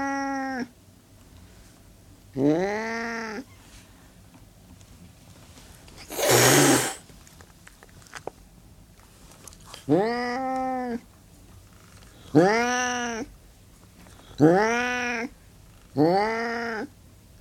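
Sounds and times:
Burmese cat hissing and growling: 0.0s - 0.7s, 2.4s - 3.4s, 6.0s - 7.0s, 9.8s - 11.0s, 12.2s - 13.3s, 14.3s - 15.3s, 16.0s - 16.9s
Burmese cat yowling: 0.0s - 0.7s, 2.4s - 3.6s, 9.9s - 11.0s, 12.3s - 13.3s, 14.4s - 15.3s, 16.0s - 16.9s
speech: 2.4s - 2.7s, 14.4s - 14.6s.

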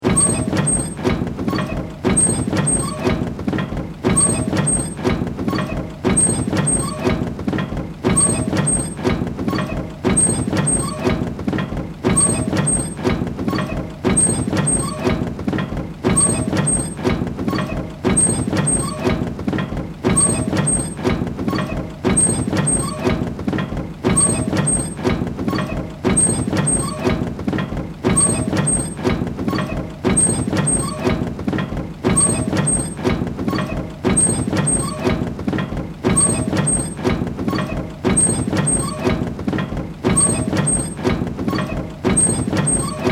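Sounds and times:
steampunk metal machine device squeaks: 0.0s - 43.1s.

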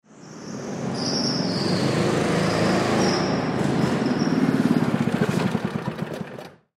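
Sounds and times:
go-kart pulling up: 1.0s - 6.7s
go-kart engine shutting off: 3.0s - 6.7s.

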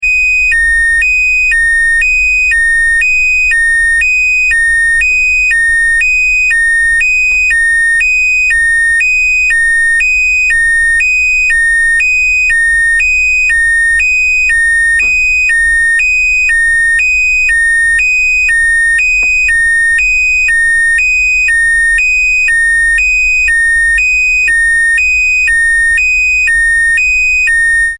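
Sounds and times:
electric alarm bleeping alternating tone: 0.0s - 27.9s.

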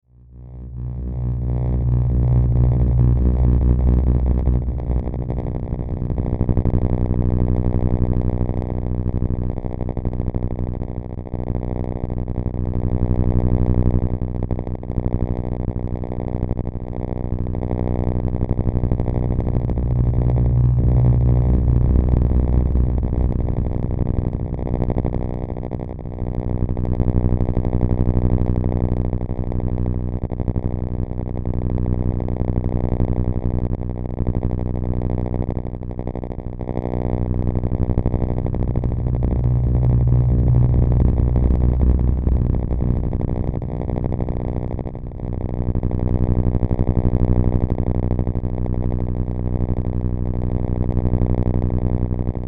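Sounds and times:
dark electrical drone: 0.1s - 52.4s
electrical pulse power surge: 0.2s - 8.8s, 18.1s - 26.0s, 36.9s - 45.4s.

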